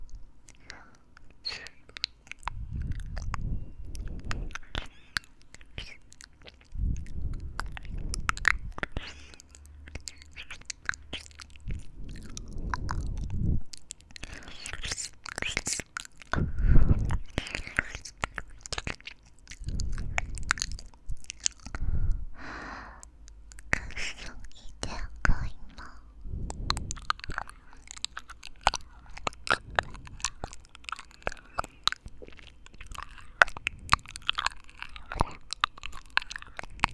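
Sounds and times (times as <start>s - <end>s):
faint whispering: 0.0s - 36.9s
wet ear-licking mouth sounds in an ASMR session: 0.0s - 36.9s
breathy sighs: 21.7s - 23.1s.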